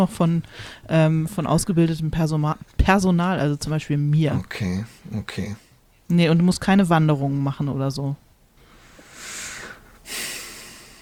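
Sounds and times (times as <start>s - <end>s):
speech: 0.0s - 8.2s
heavy snorting breaths through the nose: 8.6s - 11.0s.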